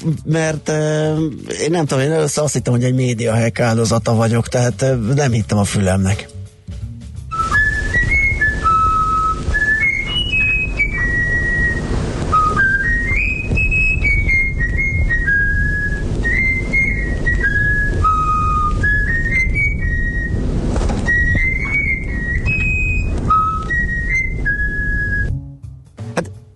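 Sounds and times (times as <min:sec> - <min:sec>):
speech: 0:00.0 - 0:06.4
constant low rumbling background: 0:00.0 - 0:26.5
trained songbird whistling a learned tune: 0:07.3 - 0:25.4.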